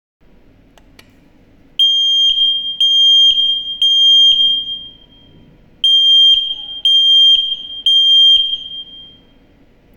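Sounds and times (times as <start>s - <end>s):
smoke alarm sounding: 1.8s - 9.4s.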